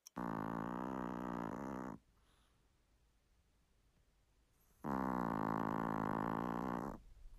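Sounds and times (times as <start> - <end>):
two-kilogram chihuahua snoring and grunting in deep sleep: 0.0 - 2.1, 4.8 - 7.0.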